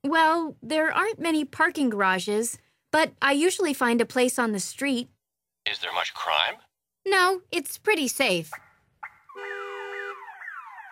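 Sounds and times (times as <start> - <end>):
speech: 0.1 - 8.6
parked car's alarm wailing on a city street: 9.0 - 10.9.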